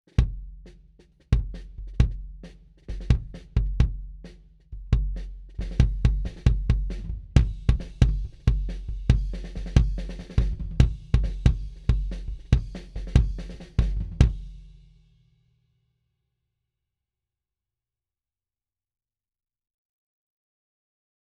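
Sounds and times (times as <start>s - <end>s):
kick drum on snare mics: 0.2s - 0.6s, 1.3s - 4.2s, 4.8s - 14.5s.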